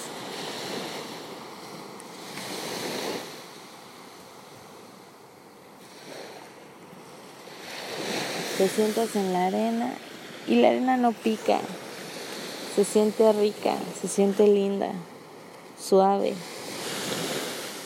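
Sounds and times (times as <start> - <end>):
steady hiss of surf: 0.0 - 1.4, 2.1 - 3.6, 7.2 - 14.6, 16.3 - 17.8
gentle waves of a calm sea washing onto a sandy shore at sunrise: 0.0 - 17.8
speech: 8.6 - 11.8, 12.8 - 15.1, 15.8 - 16.5.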